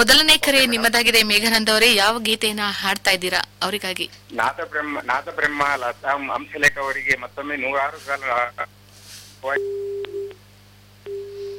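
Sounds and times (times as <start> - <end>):
speech: 0.0 - 8.8, 9.4 - 10.2
telephone busy tone after a cut-off radio phone-in call: 9.6 - 10.4, 11.0 - 11.5.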